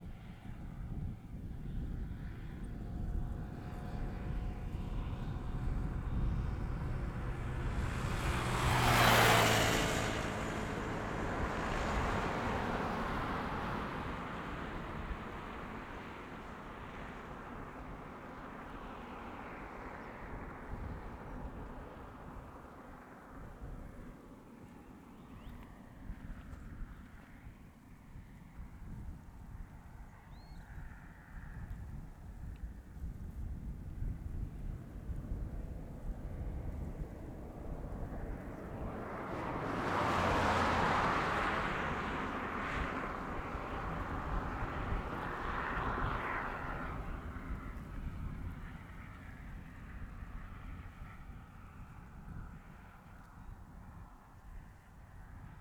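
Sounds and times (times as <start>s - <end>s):
wind on a road in Sao Jorge: 0.0s - 55.5s
motorcycle passing fast on a quiet road in Sao Jorge: 0.2s - 18.4s, 31.3s - 55.5s
car passing fast on a quiet road in Sao Jorge: 0.6s - 24.1s, 33.0s - 54.0s.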